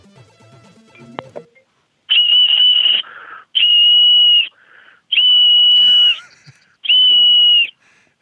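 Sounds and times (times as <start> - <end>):
man whistling sustained high notes over a telephone line: 2.1 - 4.6, 5.1 - 6.2, 6.9 - 7.8.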